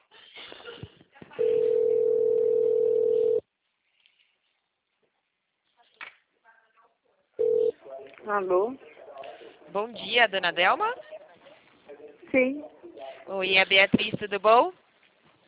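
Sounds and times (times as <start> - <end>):
telephone ringback tone while placing a phone call: 1.4 - 3.4, 7.4 - 7.7
speech: 8.3 - 8.9, 9.7 - 11.1, 12.3 - 12.7, 13.3 - 14.8.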